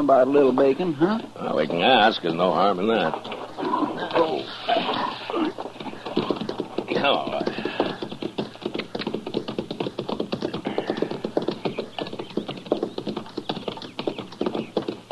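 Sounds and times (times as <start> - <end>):
speech: 0.0 - 5.7, 7.0 - 7.8
several horses' hooves clip-clopping on a hard surface: 0.0 - 15.1.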